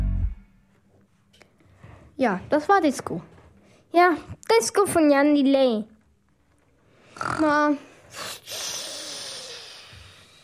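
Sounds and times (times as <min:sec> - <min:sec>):
speech: 0:02.2 - 0:05.9, 0:07.2 - 0:08.6
low snort: 0:07.2 - 0:10.4.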